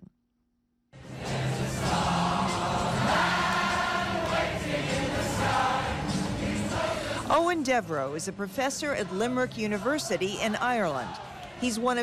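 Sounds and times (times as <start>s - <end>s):
large crowd singing together at a memorial sing-along: 1.0s - 7.4s, 8.7s - 11.8s
speech: 7.5s - 12.0s.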